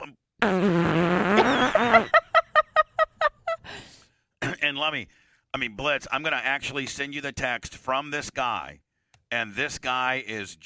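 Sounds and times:
speech: 0.4 - 1.0, 4.9 - 10.6
long loud buzzing fart: 0.4 - 2.1
laughter: 1.4 - 3.7.

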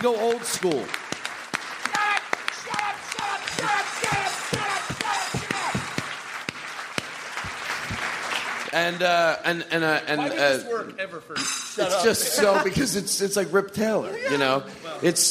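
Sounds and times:
speech: 0.0 - 1.0, 8.7 - 15.2
audience applauding: 0.0 - 9.4.

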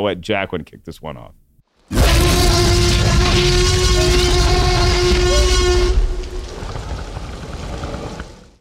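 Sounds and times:
speech: 0.0 - 4.2
massive sustained T. rex roar from a film: 1.9 - 8.5.

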